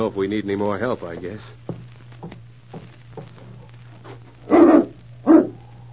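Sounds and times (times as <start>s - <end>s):
speech: 0.0s - 2.4s
steady low hum: 1.4s - 5.9s
dog barking as people approach the door: 4.5s - 5.6s.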